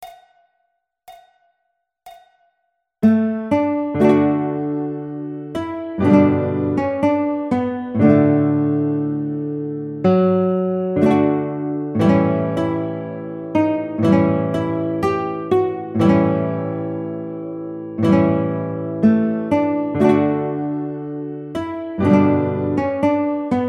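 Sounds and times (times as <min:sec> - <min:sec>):
guitar piece: 0:03.0 - 0:23.6.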